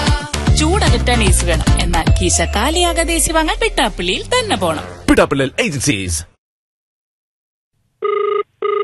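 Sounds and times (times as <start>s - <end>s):
speech: 0.9s - 6.3s
telephone ringing for an outgoing radio phone-in call: 8.0s - 8.8s.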